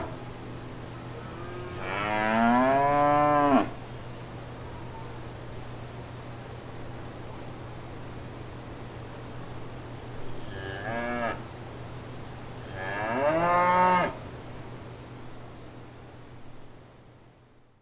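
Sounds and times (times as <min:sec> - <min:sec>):
steady low hum: 0:00.0 - 0:17.8
cow mooing at fair grounds: 0:01.2 - 0:03.8, 0:10.4 - 0:11.4, 0:12.7 - 0:14.2.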